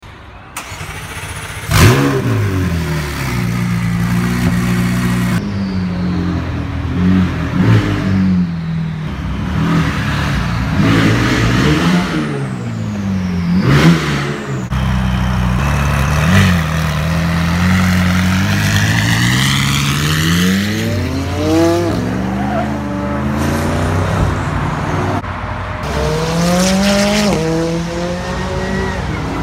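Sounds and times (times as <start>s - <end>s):
McLaren 675LT sports car engine: 0.6s - 29.4s.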